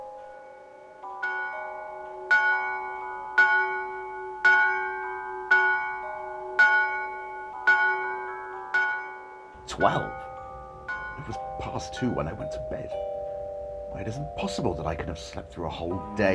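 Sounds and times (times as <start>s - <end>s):
neighbouring church bell chiming the hour: 0.0s - 16.3s
speech: 9.8s - 10.2s, 11.2s - 13.1s, 13.9s - 16.3s.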